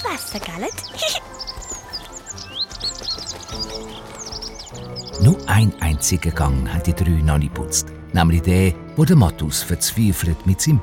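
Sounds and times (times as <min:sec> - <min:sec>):
small bird chirping: 0:00.0 - 0:07.1
speech: 0:00.1 - 0:01.4, 0:05.2 - 0:10.8.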